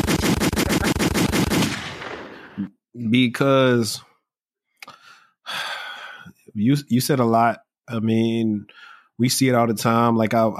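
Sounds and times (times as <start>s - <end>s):
rapid automatic machine gun gunfire: 0.0s - 2.6s
speech: 3.1s - 4.1s, 6.6s - 10.5s.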